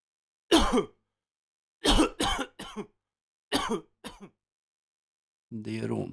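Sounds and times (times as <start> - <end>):
person coughing harsh and throaty: 0.5 - 0.9, 1.8 - 2.9, 3.5 - 4.3
speech: 0.7 - 1.0, 5.5 - 6.1.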